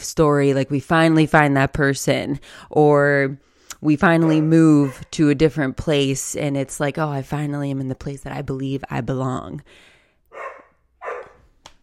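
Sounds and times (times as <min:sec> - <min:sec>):
speech: 0:00.1 - 0:10.5
dog barking: 0:04.2 - 0:05.1, 0:10.3 - 0:11.5.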